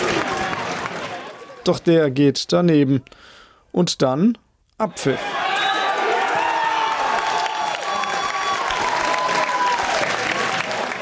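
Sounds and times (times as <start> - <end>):
football club fans cheering after the final whistle: 0.0 - 1.6, 4.9 - 11.0
crowd clapping and shouting: 0.0 - 1.7, 5.2 - 11.0
speech: 1.6 - 5.4.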